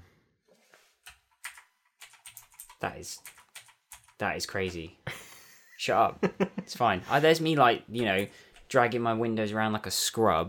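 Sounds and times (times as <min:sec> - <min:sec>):
computer keyboard keys clacking: 0:01.0 - 0:04.2
speech: 0:02.8 - 0:03.4, 0:04.2 - 0:05.0, 0:05.8 - 0:10.4.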